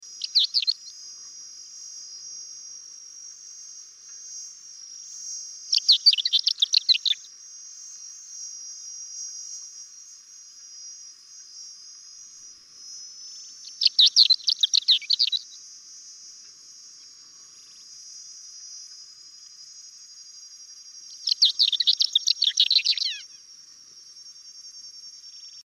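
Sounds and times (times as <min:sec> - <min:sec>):
fawn-colored lark singing: 0:00.0 - 0:01.0, 0:05.7 - 0:07.3, 0:13.3 - 0:15.6, 0:21.1 - 0:23.4.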